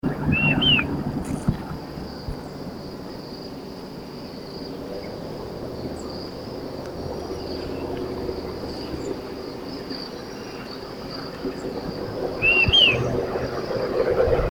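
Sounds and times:
maria-te-viu bird singing: 0.0s - 1.0s, 2.0s - 14.0s.

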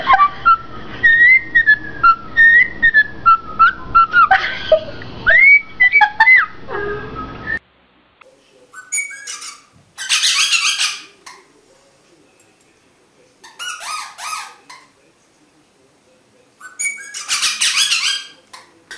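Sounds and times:
laughter: 0.0s - 0.6s, 4.1s - 7.3s
rosella whistling falling and rising notes: 0.1s - 4.4s, 5.3s - 7.6s, 8.8s - 9.6s, 16.6s - 18.4s
rosella sharp noisy calls: 8.8s - 11.2s, 16.6s - 18.4s.

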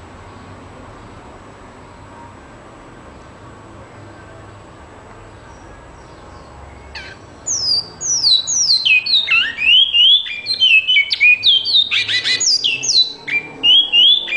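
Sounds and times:
great-billed seed finch song of clear whistled notes: 6.4s - 14.3s.

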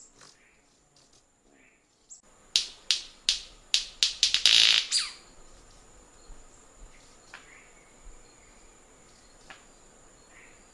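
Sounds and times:
white-bearded manakin snapping song: 2.6s - 4.9s.

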